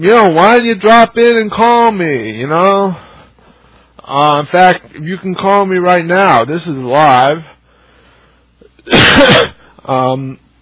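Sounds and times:
speech: 0.0 - 3.1, 4.1 - 7.5, 8.9 - 10.4
loud harsh cough during a coughing attack: 8.8 - 9.8.

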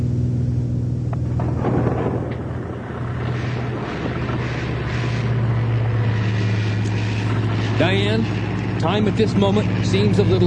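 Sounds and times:
small propeller plane in flight droning: 0.0 - 10.4
deep rolling thunder: 0.8 - 9.1
speech: 7.8 - 10.4.

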